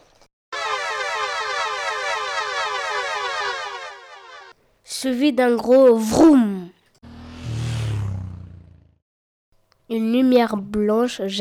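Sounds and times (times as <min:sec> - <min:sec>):
siren from a machine wailing: 0:00.6 - 0:04.5
speech: 0:05.0 - 0:06.8, 0:10.0 - 0:11.3.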